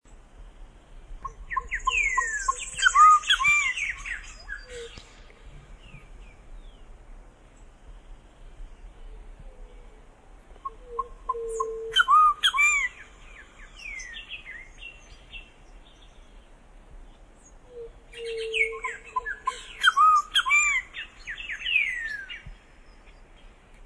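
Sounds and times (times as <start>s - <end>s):
Solitary cacique calling: 1.2s - 6.4s, 9.1s - 15.5s, 17.6s - 22.4s.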